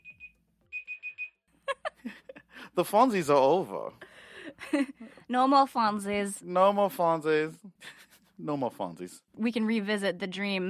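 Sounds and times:
timer alarm beeping electronic tones: 0:00.0 - 0:01.4
speech: 0:02.8 - 0:04.1, 0:04.7 - 0:07.7, 0:08.4 - 0:10.6.

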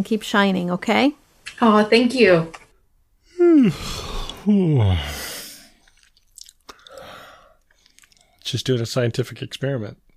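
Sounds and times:
speech: 0:00.0 - 0:02.6, 0:03.6 - 0:05.3, 0:08.5 - 0:10.0
person yawning: 0:03.3 - 0:05.7.

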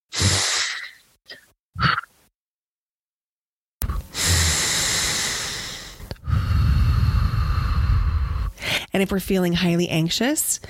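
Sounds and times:
breathing in through the nose and out through the mouth during a breathing exercise: 0:00.1 - 0:01.1, 0:03.8 - 0:08.9
speech: 0:09.0 - 0:10.6.

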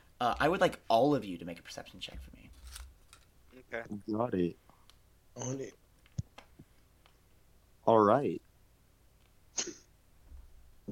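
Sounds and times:
speech: 0:00.2 - 0:02.6, 0:03.6 - 0:04.6, 0:05.4 - 0:05.8, 0:07.9 - 0:08.4
person sneezing: 0:09.6 - 0:09.9.

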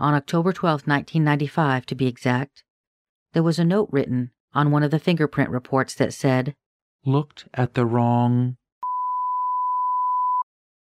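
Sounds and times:
speech: 0:00.0 - 0:02.7, 0:03.3 - 0:08.6
censor bleep covering a spoken last name: 0:08.8 - 0:10.5.

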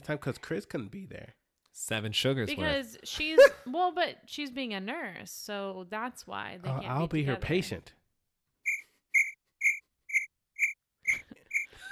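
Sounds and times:
speech: 0:00.0 - 0:08.0
cricket chirping: 0:08.7 - 0:11.8.

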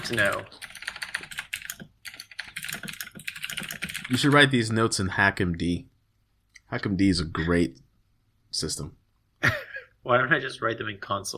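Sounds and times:
speech: 0:00.0 - 0:00.6, 0:04.1 - 0:05.9, 0:06.7 - 0:07.8, 0:08.6 - 0:11.3
rapid typing on a computer keyboard: 0:00.0 - 0:04.4.

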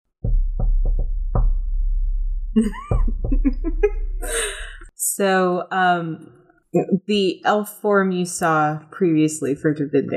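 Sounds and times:
knocking on a door: 0:00.2 - 0:01.7, 0:02.8 - 0:03.9
speech: 0:02.6 - 0:03.6, 0:05.1 - 0:10.1.

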